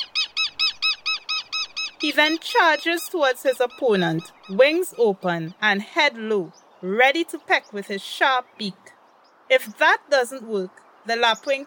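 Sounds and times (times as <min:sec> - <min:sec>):
Southern Lapwing parent alarm calling at a ground nest: 0:00.0 - 0:09.9
speech: 0:02.0 - 0:08.9, 0:09.5 - 0:11.6.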